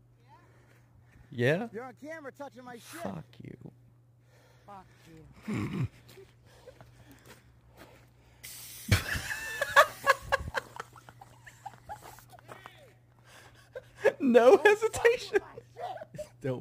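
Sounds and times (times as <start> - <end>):
speech: 1.3 - 3.6, 4.7 - 6.4, 14.3 - 16.5
pepper spray hissing: 8.4 - 10.3
laughter: 8.9 - 16.4.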